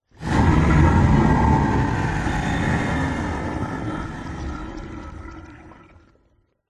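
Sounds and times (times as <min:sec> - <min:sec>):
huge menacing swamp monster growl: 0:00.1 - 0:05.7
slimy swamp bubbles: 0:03.5 - 0:06.6.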